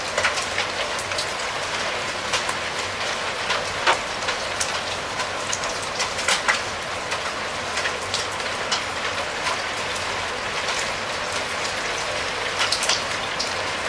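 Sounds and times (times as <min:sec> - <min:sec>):
rain beating on a roof: 0:00.0 - 0:13.8.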